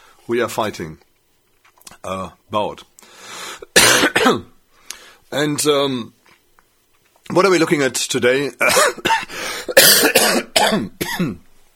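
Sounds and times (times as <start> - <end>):
speech: 0.3 - 1.1, 2.0 - 2.9, 4.2 - 4.6, 5.3 - 6.2, 7.3 - 11.4
harsh raspy coughs with wheezy tails: 3.7 - 4.5, 8.6 - 11.4.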